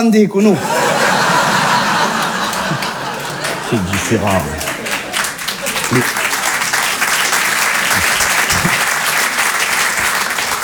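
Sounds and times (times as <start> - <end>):
speech: 0.0 - 0.8, 3.7 - 4.7, 5.9 - 6.2
laughter: 0.5 - 10.6
crowd applauding: 0.6 - 10.6
faint voices and shouts: 2.4 - 10.2.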